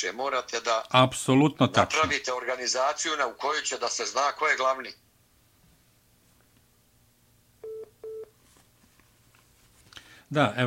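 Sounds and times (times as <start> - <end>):
speech: 0.0 - 5.0, 10.3 - 10.6
electronic telephone tones from an incoming call signal: 7.6 - 8.3.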